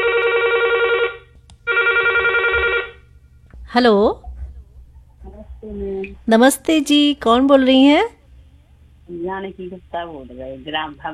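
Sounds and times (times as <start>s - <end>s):
telephone ringing with an electronic trill for an incoming radio phone-in call: 0.0s - 3.0s
faint low hum: 0.0s - 11.1s
speech: 3.7s - 4.2s, 5.6s - 8.2s, 9.1s - 11.1s.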